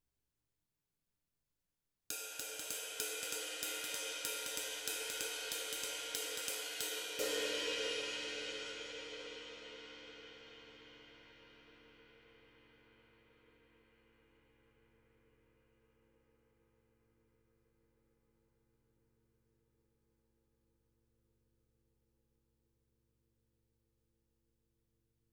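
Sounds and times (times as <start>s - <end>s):
21 jazz ride cymbal: 2.1s - 12.8s.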